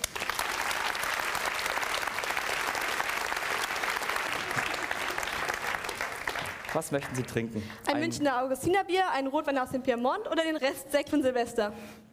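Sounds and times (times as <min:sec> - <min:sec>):
audience applause welcoming a guest: 0:00.0 - 0:07.8
speech: 0:06.8 - 0:12.0.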